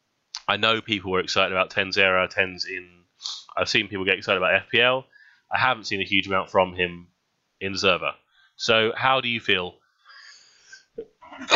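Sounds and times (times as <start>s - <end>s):
speech: 0.5s - 9.8s, 11.0s - 11.5s
person sneezing: 10.8s - 11.5s.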